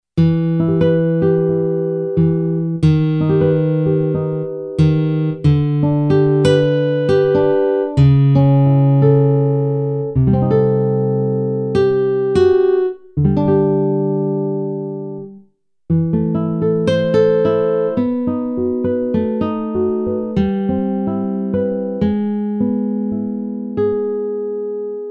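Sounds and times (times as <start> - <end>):
nylon guitar: 0.2 - 24.8.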